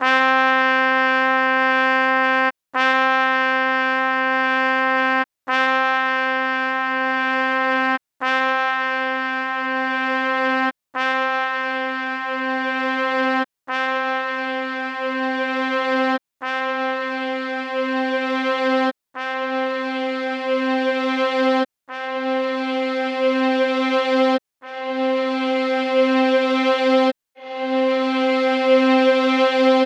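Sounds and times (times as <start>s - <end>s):
trumpet: 0.0s - 29.8s
violin: 22.6s - 29.8s.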